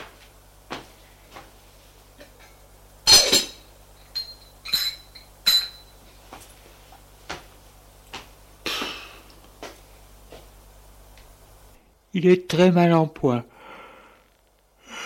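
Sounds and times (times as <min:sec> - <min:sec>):
dishes and cutlery clinking as a man prepares breakfast: 0:02.3 - 0:05.9
speech: 0:12.2 - 0:13.5.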